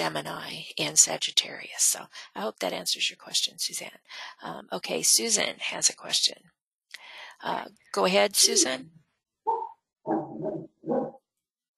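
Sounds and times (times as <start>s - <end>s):
speech: 0.0s - 6.6s, 7.4s - 9.0s
dog barking through a microphone: 9.5s - 11.2s.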